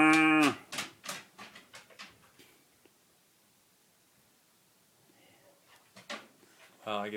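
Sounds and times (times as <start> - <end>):
cow mooing: 0.0 - 0.6.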